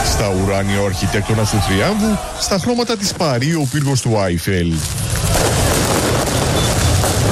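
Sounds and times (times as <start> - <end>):
speech: 0.2 - 5.2
fireworks exploding during a street celebration of a championship win in Paris: 2.7 - 7.3.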